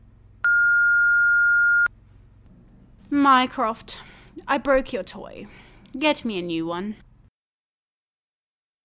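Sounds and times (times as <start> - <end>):
voicemail beep: 0.4 - 1.9
speech: 3.1 - 7.1.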